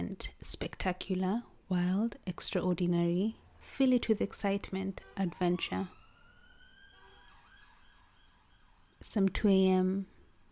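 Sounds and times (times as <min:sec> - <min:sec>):
speech: 0:00.2 - 0:06.0, 0:09.0 - 0:10.1
emergency siren wailing at night: 0:04.2 - 0:10.5.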